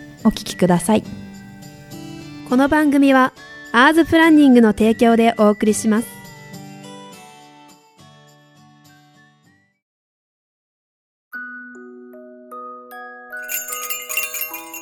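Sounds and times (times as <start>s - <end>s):
speech: 0.2s - 1.3s, 2.5s - 6.2s
bright electronic shop door entry chime: 13.4s - 14.8s.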